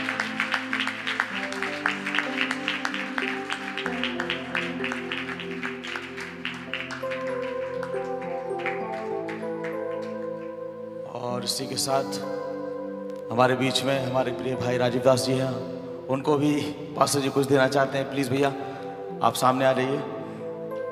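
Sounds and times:
church audience clapping: 0.0 - 11.0
music with held tones: 0.0 - 20.9
speech: 11.5 - 12.4, 13.3 - 18.6, 19.2 - 20.1.

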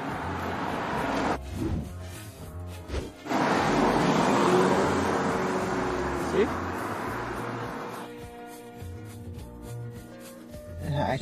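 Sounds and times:
car driving past outdoors: 0.0 - 1.4, 3.2 - 8.2.

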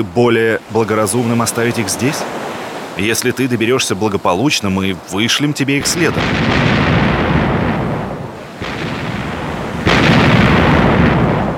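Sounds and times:
speech: 0.0 - 7.0
distress cannon shots from a sinking ship: 5.8 - 11.5
storm roaring: 5.8 - 11.5.

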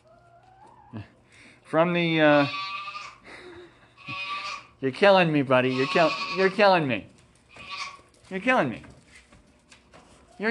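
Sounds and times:
speech: 0.9 - 1.1, 1.7 - 2.7, 4.8 - 7.1, 8.3 - 8.9
goat bleating: 2.1 - 3.2, 3.9 - 4.8, 5.6 - 6.7, 7.5 - 8.1.

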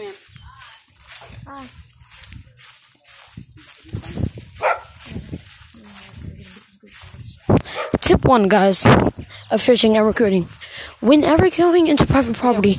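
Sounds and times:
speech: 1.5 - 1.9, 8.1 - 12.7
dog barking and whimpering: 4.6 - 4.9, 7.7 - 8.0.

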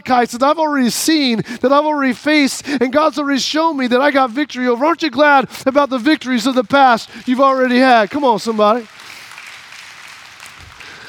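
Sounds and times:
speech: 0.0 - 9.0
audience clapping: 6.0 - 11.0.

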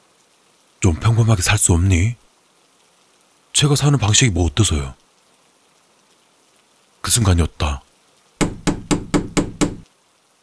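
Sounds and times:
speech: 0.8 - 2.2, 3.6 - 5.0, 7.0 - 7.8
forceful knocking on a bedroom door: 8.4 - 9.9.

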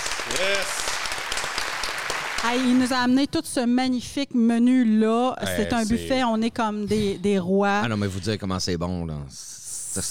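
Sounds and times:
small group applauding: 0.0 - 3.2
speech: 2.4 - 10.0.

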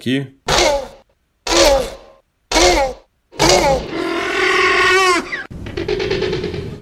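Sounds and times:
speech: 0.0 - 0.7
Velociraptor call mixed from dolphin, walrus, goose, turtle and bird sounds: 0.5 - 5.5.

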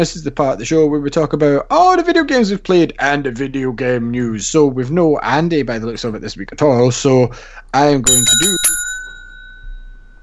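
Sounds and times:
speech: 0.0 - 8.8
bright metallic bell strike ringing: 8.1 - 10.2.

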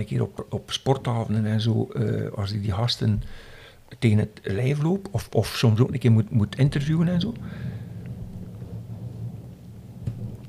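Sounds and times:
speech: 0.0 - 7.8
thunder rumbling as a summer evening storm begins: 5.0 - 10.4.

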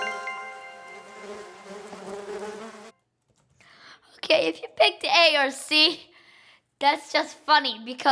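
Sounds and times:
bees buzzing in nearby trees: 0.0 - 2.9
speech: 4.3 - 6.1, 6.8 - 8.1.

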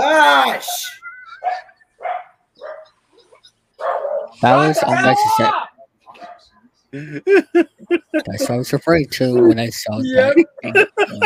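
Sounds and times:
speech: 0.5 - 1.7, 4.4 - 5.6, 6.9 - 11.2
laughter: 0.6 - 2.0, 6.9 - 11.2
dogs barking: 1.2 - 4.7, 6.2 - 6.5.

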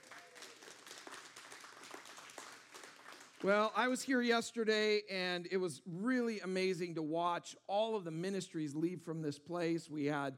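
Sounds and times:
church audience applauding: 0.0 - 3.8
speech: 3.4 - 10.3.

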